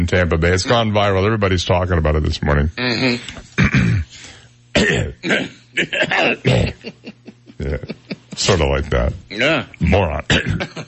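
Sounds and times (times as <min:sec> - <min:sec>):
speech: 0:00.0 - 0:03.9, 0:04.8 - 0:10.8
person faking coughs to disguise an insult: 0:02.8 - 0:04.1, 0:04.7 - 0:06.9, 0:10.3 - 0:10.8.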